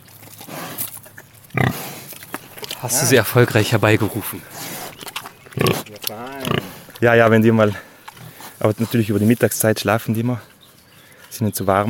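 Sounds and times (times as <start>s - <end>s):
two large pigs grunting as they come running: 0.0s - 9.0s
outdoor noise: 0.0s - 11.8s
speech: 2.8s - 4.7s, 5.6s - 7.9s, 8.6s - 10.5s, 11.3s - 11.8s.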